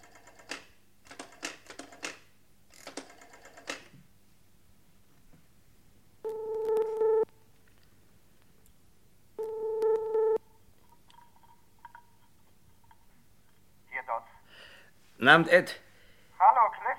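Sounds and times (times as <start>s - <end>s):
telephone ringing signal heard on a call: 6.2s - 7.3s, 9.4s - 10.5s
speech: 15.2s - 15.8s.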